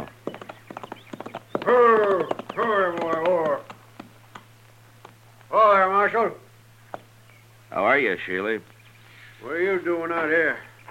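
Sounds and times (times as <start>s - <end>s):
galloping horse hoofbeats: 0.0s - 4.5s
speech: 8.0s - 8.8s, 9.4s - 10.7s.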